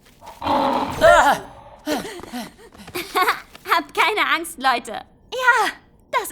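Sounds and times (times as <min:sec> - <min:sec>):
robot bird giving a lion-like roar: 0:00.2 - 0:01.9
speech: 0:04.3 - 0:06.3.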